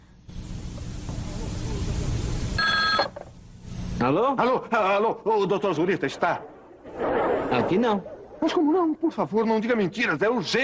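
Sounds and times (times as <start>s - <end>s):
hissy noise: 0.0s - 10.6s
telephone ringing: 2.6s - 3.2s
speech: 4.0s - 10.6s.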